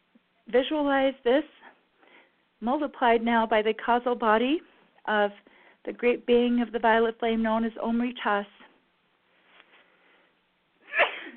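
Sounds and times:
speech: 0.5s - 1.7s, 2.6s - 8.6s
person sneezing: 10.9s - 11.3s.

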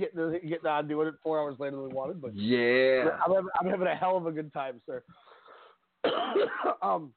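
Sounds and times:
speech: 0.0s - 5.3s, 6.0s - 7.1s
person clearing throat: 6.0s - 7.0s
person coughing: 6.0s - 7.0s.

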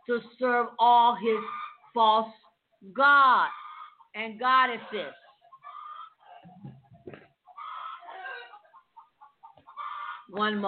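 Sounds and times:
chickens clucking: 0.0s - 10.6s
speech: 0.1s - 3.6s, 4.2s - 5.2s, 10.3s - 10.6s
roosters crowing loudly by a window: 4.9s - 6.5s, 7.5s - 8.7s, 9.5s - 10.3s.

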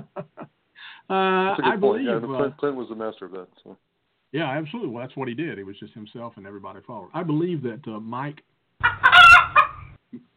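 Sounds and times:
laughter: 0.0s - 0.6s
speech: 1.1s - 8.9s
chicken clucking: 8.8s - 10.0s
rooster crowing: 8.9s - 9.8s.

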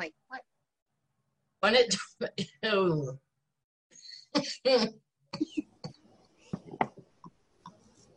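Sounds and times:
speech: 1.6s - 3.2s, 4.4s - 5.6s
woman coughing after inhaling from a vaporizer: 4.2s - 6.0s.

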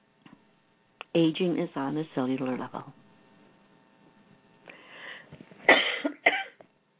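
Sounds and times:
speech: 1.2s - 3.0s
dry allergy coughs: 5.7s - 6.6s.

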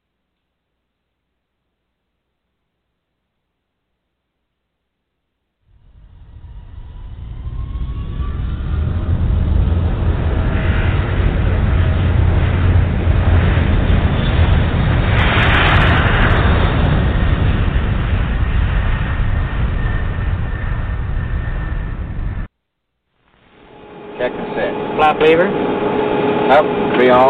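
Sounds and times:
jet airliner engines during takeoff roll on runway: 5.7s - 22.5s, 23.4s - 27.2s
speech: 25.2s - 25.6s.

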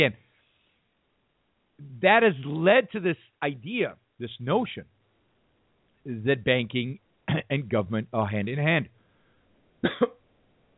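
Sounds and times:
speech: 0.0s - 0.2s, 1.8s - 4.9s, 6.0s - 9.0s, 9.8s - 10.2s
harsh cough or throat clearing: 7.3s - 7.5s, 9.8s - 10.2s.

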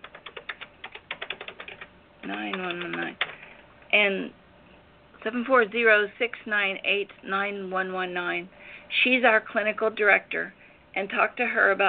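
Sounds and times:
typing on a computer keyboard: 0.0s - 3.4s
speech: 2.3s - 3.3s, 3.9s - 4.4s, 5.2s - 11.8s.

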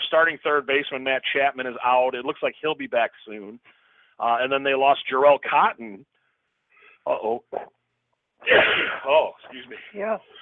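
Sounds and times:
speech: 0.1s - 6.1s, 7.0s - 7.8s, 8.4s - 10.4s
sneeze: 8.4s - 9.3s.

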